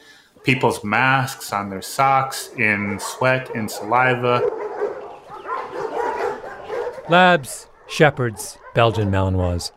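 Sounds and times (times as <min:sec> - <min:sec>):
speech: 0:00.4 - 0:04.6, 0:07.1 - 0:09.7
dog barking and yipping: 0:00.4 - 0:09.7
dog whining: 0:02.3 - 0:09.1.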